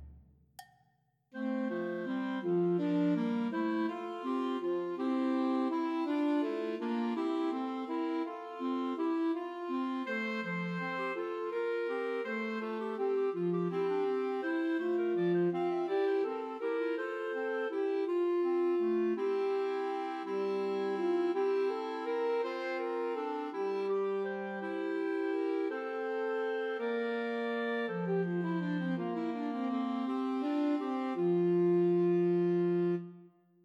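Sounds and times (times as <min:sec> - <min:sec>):
alto saxophone playing a carol: 0:01.4 - 0:33.3.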